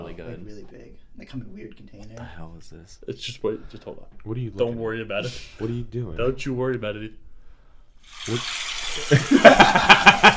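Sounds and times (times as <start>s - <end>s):
speech: 0.0s - 7.2s, 8.0s - 10.3s
recording of running water: 8.0s - 10.3s
people chuckling: 9.0s - 10.3s.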